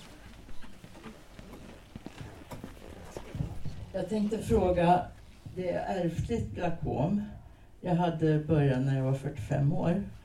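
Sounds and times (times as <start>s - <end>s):
microphone rustling and handling noise: 0.0s - 5.6s
hurried footsteps of someone running with a microphone: 0.0s - 5.7s
speech: 4.0s - 10.2s.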